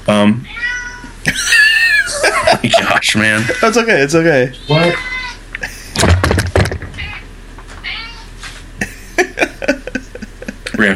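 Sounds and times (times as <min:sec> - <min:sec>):
speech: 0:00.1 - 0:00.6, 0:03.0 - 0:05.1
cat yowling loudly: 0:00.4 - 0:02.1, 0:03.4 - 0:04.0, 0:04.6 - 0:05.5, 0:07.0 - 0:08.3
laughter: 0:01.2 - 0:04.0, 0:05.6 - 0:06.4, 0:08.8 - 0:10.9.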